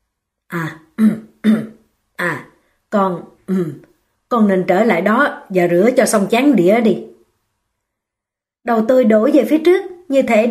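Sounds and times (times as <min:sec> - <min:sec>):
man clearing his throat: 0:01.0 - 0:01.9
speech: 0:02.9 - 0:07.1, 0:08.6 - 0:10.4.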